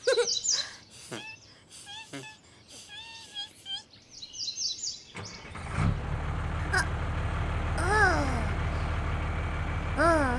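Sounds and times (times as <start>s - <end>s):
birds chirping and trilling: 0.0s - 5.7s
truck engine rumbling: 5.2s - 10.3s.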